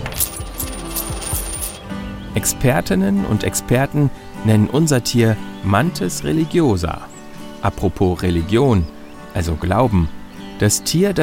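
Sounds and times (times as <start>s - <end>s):
coins dropping and clinking: 0.0s - 1.8s
speech: 2.4s - 11.2s.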